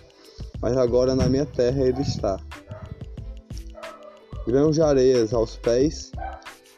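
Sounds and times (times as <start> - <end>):
speech: 0.6 - 2.5, 4.4 - 6.3
dog barking: 1.6 - 4.6, 6.2 - 6.6.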